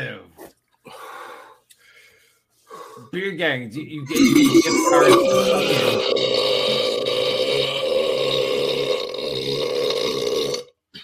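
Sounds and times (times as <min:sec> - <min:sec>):
speech: 0:03.1 - 0:07.0
loud throaty burp: 0:04.1 - 0:10.8.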